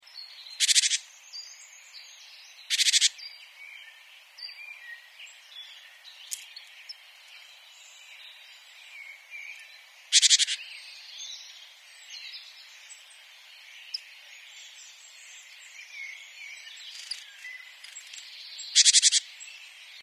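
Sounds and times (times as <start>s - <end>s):
soft bird chirps and whistles: 0.1s - 20.0s
great tit Parus major giving harsh buzzy rattling calls: 0.6s - 1.1s, 2.7s - 3.2s, 10.1s - 10.6s, 18.7s - 19.3s.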